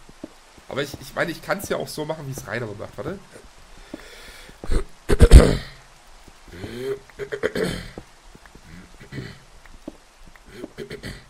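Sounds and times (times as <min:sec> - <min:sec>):
speech: 0:00.7 - 0:03.5, 0:05.4 - 0:05.7
person clearing throat: 0:04.7 - 0:05.8, 0:06.7 - 0:08.0, 0:10.5 - 0:11.2.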